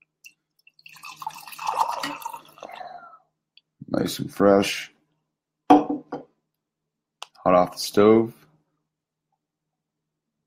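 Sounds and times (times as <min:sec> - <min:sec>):
coffee pouring from a pour-over maker: 0:00.2 - 0:03.0
speech: 0:03.9 - 0:04.9, 0:07.5 - 0:08.4.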